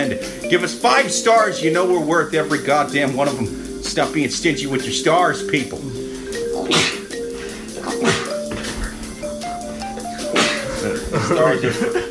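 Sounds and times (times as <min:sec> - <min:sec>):
speech: 0:00.0 - 0:06.0, 0:11.3 - 0:12.0
loud explosive sneezes: 0:06.6 - 0:07.2, 0:07.8 - 0:08.8, 0:10.3 - 0:10.7
laughter: 0:10.0 - 0:12.0.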